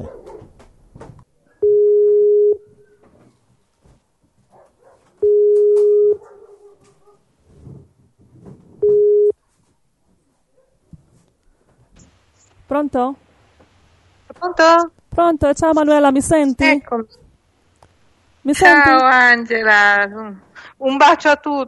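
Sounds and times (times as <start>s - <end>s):
faint noise: 0.0s - 21.6s
Skype call connecting tone beeps: 1.6s - 2.6s, 5.2s - 6.2s, 8.8s - 9.4s
speech: 12.8s - 13.2s, 14.6s - 17.2s, 18.4s - 21.6s.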